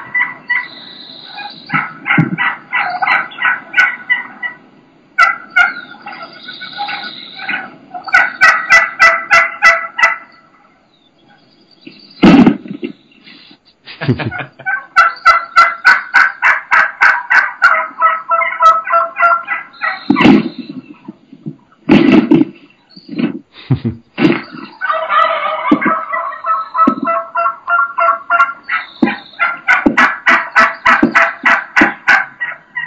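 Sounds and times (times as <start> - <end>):
wild turkey gobbling calls: 0.0 - 13.4, 14.1 - 23.3, 24.2 - 32.8
sharp knocks on plastic decoys: 1.7 - 2.5, 20.1 - 22.6, 25.7 - 26.0, 26.8 - 27.2, 29.8 - 30.2, 30.9 - 32.0
wild turkeys thumping and flapping while attacking plastic decoys: 1.7 - 2.5, 12.2 - 12.9, 20.1 - 23.4, 24.2 - 24.7, 25.7 - 26.0, 26.8 - 27.1
laughter: 13.3 - 14.8, 23.6 - 24.0.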